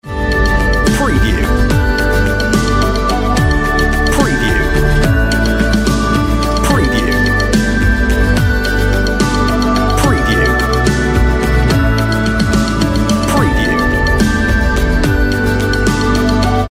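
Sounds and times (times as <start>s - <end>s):
on-hold music: 0.0s - 16.6s.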